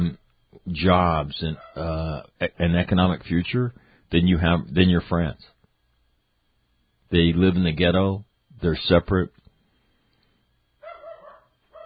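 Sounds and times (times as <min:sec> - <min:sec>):
speech: 0:00.1 - 0:05.5, 0:07.1 - 0:09.4
dog barking in the backyard: 0:01.6 - 0:01.9, 0:10.8 - 0:11.8.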